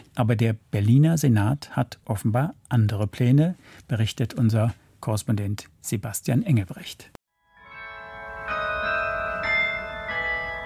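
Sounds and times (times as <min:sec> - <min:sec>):
speech: 0:00.2 - 0:07.2
church carillon playing a melodic sequence: 0:07.4 - 0:10.6.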